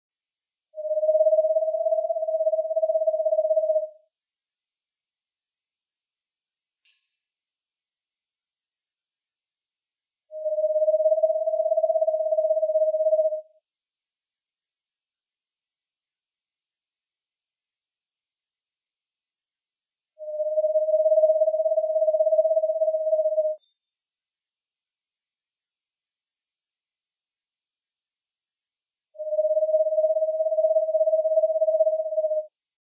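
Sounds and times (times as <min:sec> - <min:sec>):
screech owl calling: 0:00.8 - 0:04.0, 0:10.3 - 0:13.5, 0:20.2 - 0:23.8, 0:29.2 - 0:32.5.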